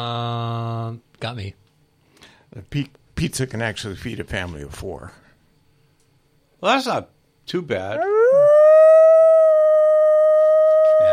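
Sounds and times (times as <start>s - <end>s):
speech: 1.2s - 1.6s, 2.5s - 5.2s, 6.6s - 8.1s
dogs howling: 8.0s - 11.1s.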